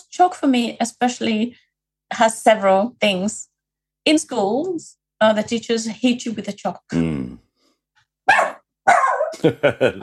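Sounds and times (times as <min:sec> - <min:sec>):
speech: 0:00.2 - 0:07.4, 0:09.4 - 0:10.0
dog barking: 0:08.3 - 0:09.4
laughter: 0:09.4 - 0:10.0.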